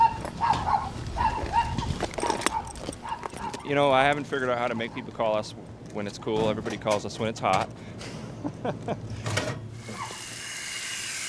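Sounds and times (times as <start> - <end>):
dog barking in short sharp yaps: 0.0 - 3.7
rumbly noise: 0.0 - 5.8
speech: 3.7 - 9.3.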